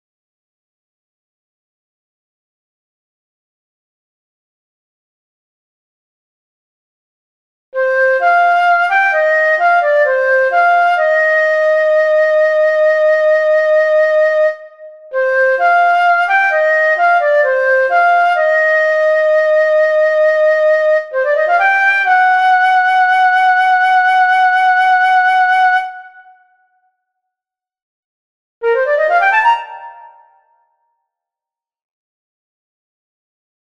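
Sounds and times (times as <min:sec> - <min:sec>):
transverse flute: 0:07.8 - 0:26.5, 0:28.6 - 0:30.6.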